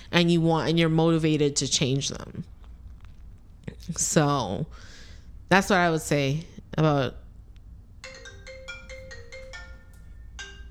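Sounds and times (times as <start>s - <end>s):
low hum: 0.0s - 10.6s
speech: 0.1s - 2.5s, 3.7s - 4.9s, 5.5s - 7.2s
mobile phone ringtone: 8.0s - 10.6s.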